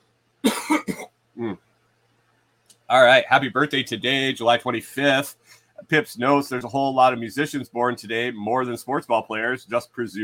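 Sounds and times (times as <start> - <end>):
harsh coughing to clear something stuck in the throat: 0.4 - 1.5
speech: 2.9 - 10.2.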